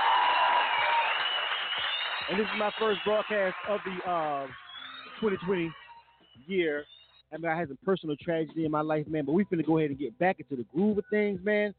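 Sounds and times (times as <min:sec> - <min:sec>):
crowd applause: 0:00.0 - 0:05.8
speech: 0:02.3 - 0:04.6, 0:05.2 - 0:05.8, 0:06.4 - 0:11.7.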